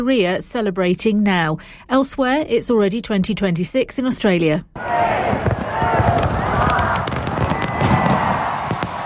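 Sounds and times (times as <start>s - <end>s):
speech: 0.0s - 5.6s
crowd murmuring: 4.8s - 7.0s
fireworks banging and crackling over a harbour: 5.1s - 9.0s.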